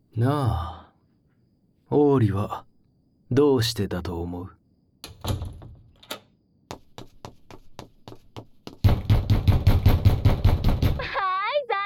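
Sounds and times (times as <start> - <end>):
speech: 0.2 - 0.8, 1.9 - 2.7, 3.3 - 4.6
knocking on a locked door: 5.0 - 6.0, 6.7 - 11.2.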